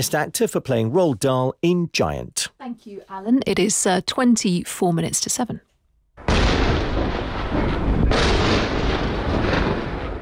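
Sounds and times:
speech: 0:00.0 - 0:06.8
explosions over a city during a night missile barrage: 0:06.2 - 0:10.1.

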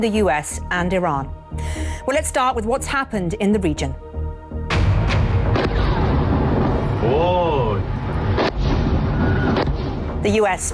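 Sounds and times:
speech: 0:00.0 - 0:04.1, 0:10.2 - 0:10.7
sharp loud booms from US strikes on the port city of Bandar Abbas: 0:04.7 - 0:10.2.

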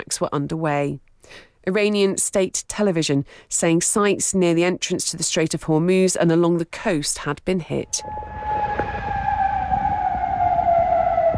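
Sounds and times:
speech: 0:00.1 - 0:08.8
air raid siren wailing in Kuwait: 0:07.8 - 0:11.3
low rumbling noise: 0:07.8 - 0:11.3.

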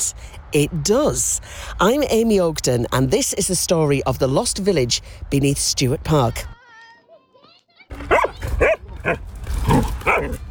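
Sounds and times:
speech: 0:00.0 - 0:06.5, 0:08.6 - 0:09.2
steady low rumble of open-air noise: 0:00.0 - 0:06.6, 0:07.9 - 0:10.5
dog barking outdoors in a park in the afternoon: 0:08.0 - 0:10.5.

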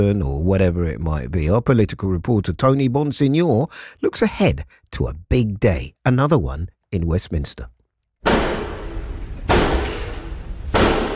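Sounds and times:
speech: 0:00.0 - 0:08.4
heavy bangs on the wooden doors of the House of Commons in Westminster: 0:08.2 - 0:11.1.

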